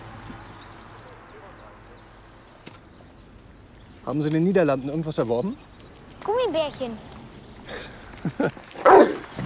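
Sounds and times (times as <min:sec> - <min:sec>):
speech: 0:04.1 - 0:05.7, 0:06.3 - 0:07.1, 0:07.7 - 0:09.2
detection dog barking an alert during a customs traffic check: 0:08.8 - 0:09.3.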